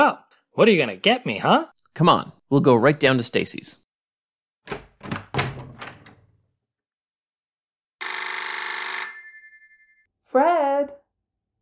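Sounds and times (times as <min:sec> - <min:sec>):
speech: 0:00.1 - 0:03.8, 0:10.3 - 0:11.0
hollow clunks: 0:04.7 - 0:06.4
old telephone bell ringing: 0:08.0 - 0:10.1.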